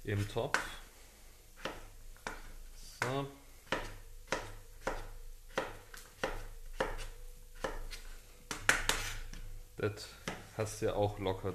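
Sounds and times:
speech: 0:00.0 - 0:00.8, 0:03.0 - 0:03.4, 0:09.8 - 0:11.5
knife dicing food into small cubes: 0:01.6 - 0:09.5.

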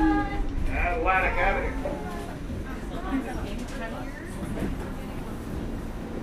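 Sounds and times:
New York subway train moving along the tracks: 0:00.0 - 0:06.2.

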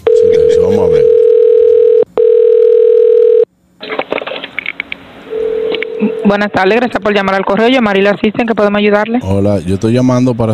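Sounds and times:
steady telephone tone during call transfer to a postal service helpline: 0:00.0 - 0:03.5, 0:05.3 - 0:06.3
speech: 0:06.3 - 0:10.5.

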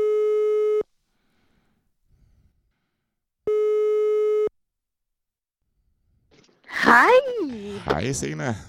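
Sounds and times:
telephone line ringing tones during a call: 0:03.5 - 0:04.5
speech: 0:06.9 - 0:08.6.

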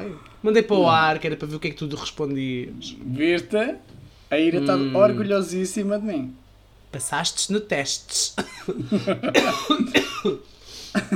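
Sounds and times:
speech: 0:00.0 - 0:11.1
person coughing harshly: 0:08.4 - 0:10.4.

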